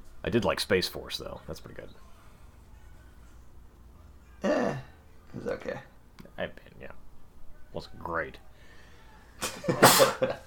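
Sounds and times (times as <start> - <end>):
speech: 0.2 - 2.1, 5.4 - 7.0, 7.7 - 8.5, 9.5 - 10.4
sneeze: 9.4 - 10.3.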